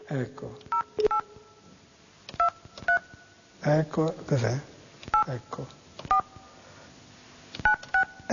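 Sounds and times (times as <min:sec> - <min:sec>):
speech: 0:00.1 - 0:01.1, 0:03.6 - 0:05.8
telephone keypad dialing beeps: 0:00.7 - 0:01.2, 0:07.6 - 0:08.3.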